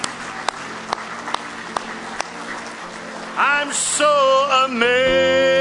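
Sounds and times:
rhythmic sharp claps: 0.0s - 3.0s
crowd clapping: 0.0s - 3.8s
speech: 3.6s - 5.5s.

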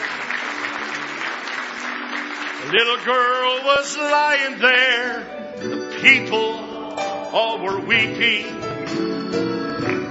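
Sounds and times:
audience applauding in praise at an evening gathering: 0.0s - 5.0s, 8.7s - 10.0s
speech: 2.7s - 6.6s, 7.3s - 9.1s.

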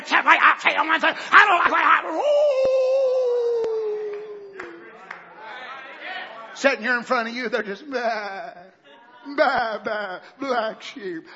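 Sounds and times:
speech: 0.6s - 2.8s, 6.6s - 11.3s
voice imitating a wolf howl during a sermon: 1.4s - 4.4s.

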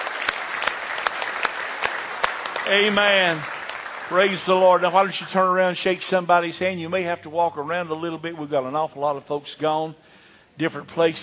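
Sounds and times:
congregation clapping hands in praise at a church service: 0.0s - 6.4s
speech: 2.7s - 10.0s, 10.6s - 11.2s.

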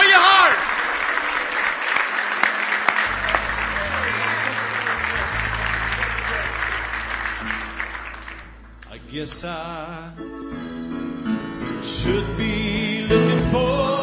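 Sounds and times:
church audience clapping hands in praise: 0.0s - 9.0s
low organ or bass tones: 0.0s - 14.0s
faint crowd voices: 0.9s - 7.8s
speech: 9.2s - 10.3s, 11.8s - 13.9s.

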